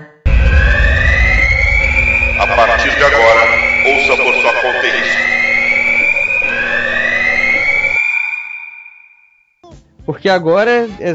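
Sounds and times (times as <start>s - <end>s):
dense rumbling backdrop: 0.3s - 8.0s
loud piercing fire alarm tone: 0.3s - 9.6s
speech: 2.4s - 5.4s, 10.1s - 11.1s.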